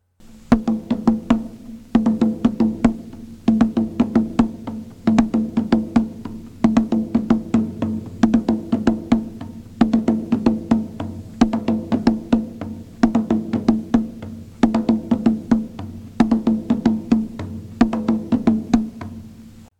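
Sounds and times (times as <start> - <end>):
Nyau drum ensemble playing a rhythm pattern: 0.2 - 19.7.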